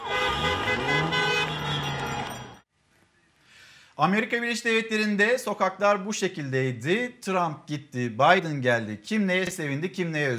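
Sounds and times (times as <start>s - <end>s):
car horns blaring together on a busy street in the United States: 0.0s - 2.6s
speech: 4.0s - 10.3s.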